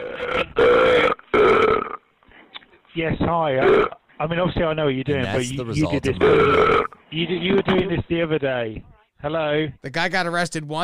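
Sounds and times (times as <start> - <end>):
speech: 0.2 - 0.9, 3.0 - 10.8
man burping into a phone call: 5.1 - 7.0.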